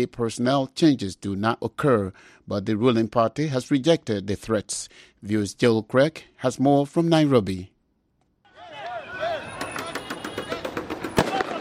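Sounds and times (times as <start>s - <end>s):
speech: 0.0s - 7.7s
crowd of retreating demonstrators shouting: 8.5s - 11.5s
police firing tear gas at protesters in Nairobi: 10.1s - 11.5s.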